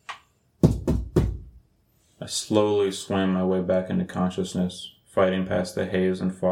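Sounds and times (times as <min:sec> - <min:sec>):
heavy pounding knocks on a door: 0:00.6 - 0:01.6
speech: 0:02.2 - 0:06.5.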